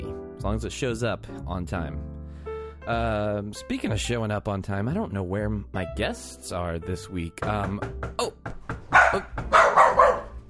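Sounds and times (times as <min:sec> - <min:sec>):
speech: 0:00.4 - 0:02.2, 0:02.8 - 0:08.5
dog barking and yipping: 0:08.9 - 0:10.4.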